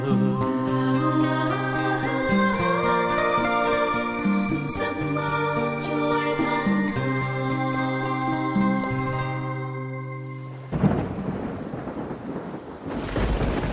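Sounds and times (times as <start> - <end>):
sustained musical tones: 0.0 - 11.3
heavy rain in a storm: 10.2 - 13.7
gusting wind in a storm: 10.4 - 13.7.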